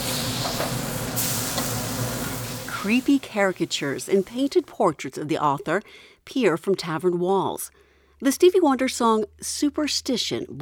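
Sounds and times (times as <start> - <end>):
burgers sizzling on a grill inside a tavern: 0.0 - 4.4
speech: 2.8 - 10.5.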